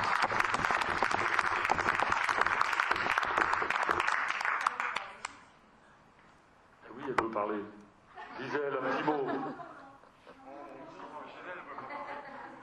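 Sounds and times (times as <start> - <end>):
room full of people applauding: 0.0 - 5.3
laughter: 8.1 - 12.6.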